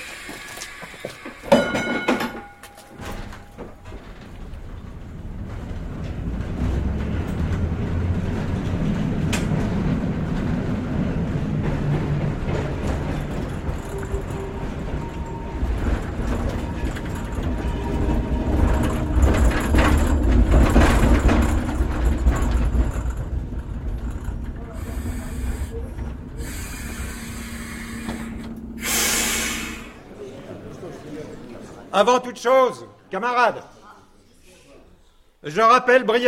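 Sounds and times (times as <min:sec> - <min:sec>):
tram running on its rails in revolutionary Russia: 0:00.0 - 0:31.9
speech: 0:32.0 - 0:33.7, 0:35.4 - 0:36.2.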